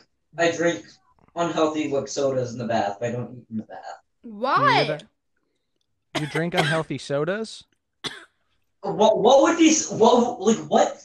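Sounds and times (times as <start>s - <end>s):
speech: 0.4s - 5.1s, 6.1s - 8.2s, 8.8s - 11.0s
person coughing from banana going down the wrong way: 6.2s - 7.0s, 8.0s - 8.4s.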